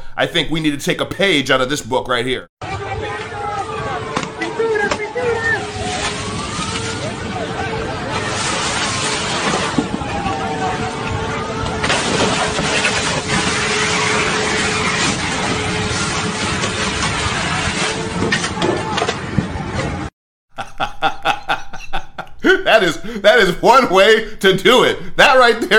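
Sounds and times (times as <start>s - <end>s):
speech: 0.2s - 2.6s, 22.6s - 25.7s
noisy crowd of protesters shouting: 2.6s - 12.5s, 18.2s - 20.0s
water cannon spraying protesters: 4.3s - 10.7s, 11.8s - 18.5s
laughter: 20.5s - 23.6s.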